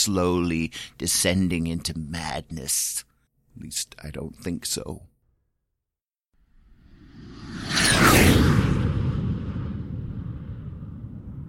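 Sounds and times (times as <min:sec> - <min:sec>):
speech: 0:00.0 - 0:05.1
loud sweeping whoosh transition effect with descending swish: 0:06.6 - 0:11.4.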